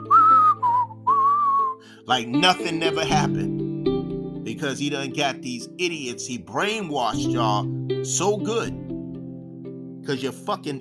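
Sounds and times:
breezy whistled tune: 0:00.0 - 0:02.0
speech: 0:02.1 - 0:03.7, 0:04.4 - 0:08.8, 0:10.1 - 0:10.7.

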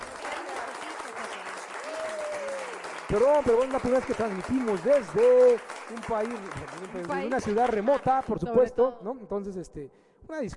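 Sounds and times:
crowd applause for a guest during a live show: 0:00.0 - 0:08.4
speech: 0:03.1 - 0:10.5.

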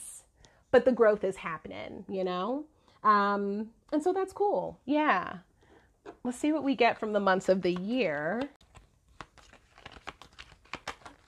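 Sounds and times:
speech: 0:00.7 - 0:05.5, 0:06.2 - 0:08.6
deck of cards shuffled by hand: 0:07.6 - 0:11.2.

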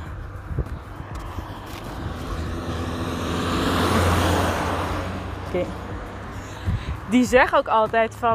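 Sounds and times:
speech: 0:00.6 - 0:00.9, 0:05.5 - 0:05.8, 0:07.1 - 0:08.3
small green French open-roof car driving past with engine and tyre noise: 0:01.7 - 0:06.4.

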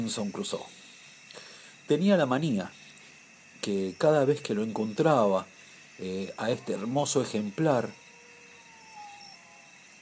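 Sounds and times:
speech: 0:00.0 - 0:00.8, 0:01.9 - 0:02.8, 0:03.6 - 0:08.0
hiss: 0:00.0 - 0:10.0
wolves howling: 0:06.0 - 0:10.0.

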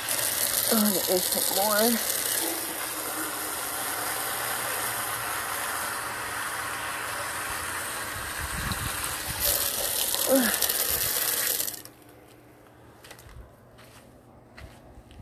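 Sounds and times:
water running outdoors for a dog to drink: 0:00.0 - 0:11.9
speech: 0:00.7 - 0:02.7.

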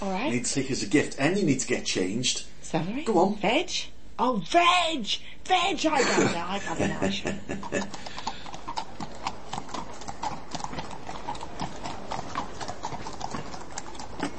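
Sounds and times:
speech: 0:00.3 - 0:08.2
laughter: 0:06.0 - 0:08.1
horse hooves clip-clopping: 0:07.6 - 0:14.3.

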